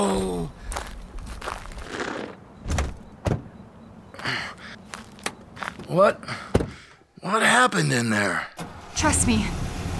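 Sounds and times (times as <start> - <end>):
shuffling footsteps of someone helped into a car: 0.7 - 2.2, 4.7 - 6.0
car doors shutting: 2.6 - 3.6, 6.4 - 6.9
speech: 5.9 - 6.4, 7.2 - 9.9.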